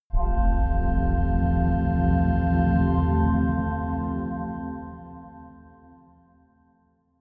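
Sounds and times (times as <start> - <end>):
short major organ swell: 0.5 - 5.8.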